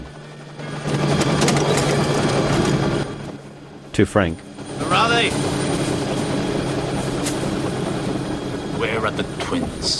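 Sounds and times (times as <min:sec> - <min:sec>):
helicopter engine and rotor running on an island landing site: 0:00.0 - 0:09.9
speech: 0:04.0 - 0:05.6, 0:08.8 - 0:09.9.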